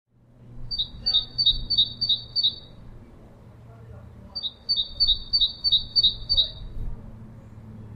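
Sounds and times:
Great tit Parus major song: 0.7s - 2.8s, 4.4s - 6.8s.

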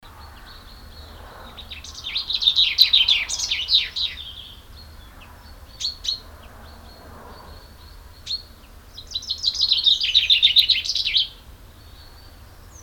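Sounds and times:
common chaffinch Fringilla coelebs song: 0.0s - 12.8s.

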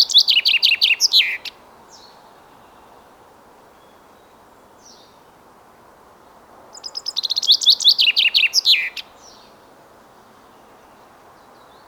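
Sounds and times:
common chaffinch Fringilla coelebs song: 0.0s - 2.2s, 6.7s - 9.5s.

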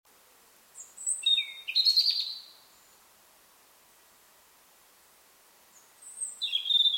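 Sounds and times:
European robin Erithacus rubecula singing: 0.8s - 3.0s, 5.7s - 6.9s.

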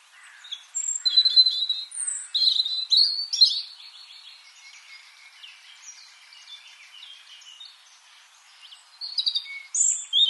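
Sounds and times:
European robin Erithacus rubecula warbling song: 0.4s - 3.8s, 8.6s - 10.2s.

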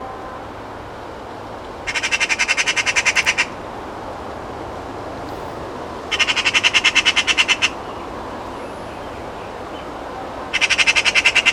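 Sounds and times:
Eurasian magpie chattering: 1.9s - 3.5s, 6.1s - 7.8s, 10.5s - 11.5s.

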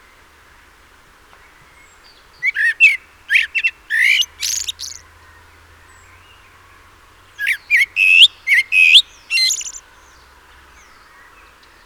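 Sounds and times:
Common blackbird Turdus merula chattering scratchy notes: 3.4s - 5.0s, 7.4s - 9.8s.

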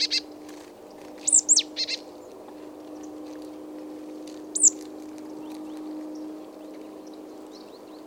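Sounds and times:
steady low hum: 0.0s - 8.0s
marsh tit Poecile palustris calls: 1.2s - 2.0s, 4.5s - 4.8s.

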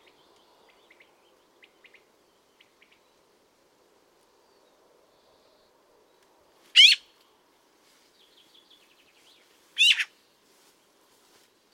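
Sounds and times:
Eurasian magpie harsh rasping calls: 6.8s - 7.0s, 9.8s - 10.1s.

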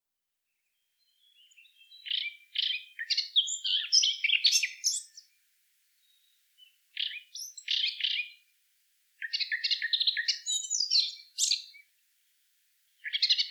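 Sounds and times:
Eurasian blackcap Sylvia atricapilla singing: 1.0s - 5.3s, 6.0s - 8.4s, 9.2s - 11.8s, 13.0s - 13.4s.

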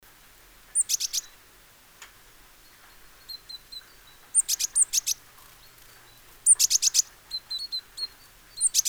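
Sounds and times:
great tit Parus major calling: 0.8s - 1.4s, 2.7s - 8.8s.

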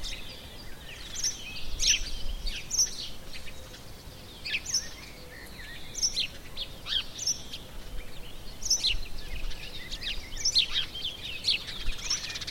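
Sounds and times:
house sparrow Passer domesticus chirping: 0.0s - 12.4s.

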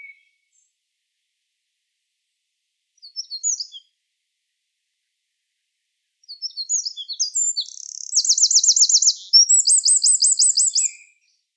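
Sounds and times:
Eurasian wren Troglodytes troglodytes singing: 3.0s - 3.9s, 6.2s - 11.1s.

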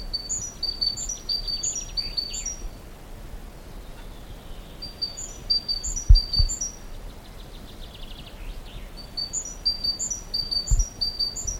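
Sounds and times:
Parus major great tit chirping: 0.1s - 2.6s, 3.8s - 11.5s
low thumps: 6.1s - 6.6s.

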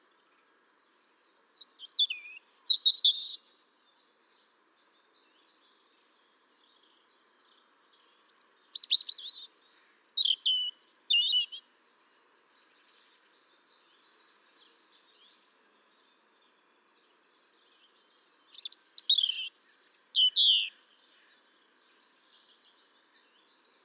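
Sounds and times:
European robin Erithacus rubecula high liquid warbled song: 1.6s - 3.4s, 8.3s - 11.6s, 18.1s - 20.8s.

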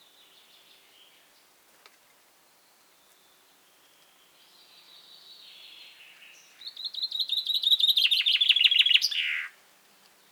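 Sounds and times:
common chaffinch Fringilla coelebs singing: 6.6s - 9.5s.

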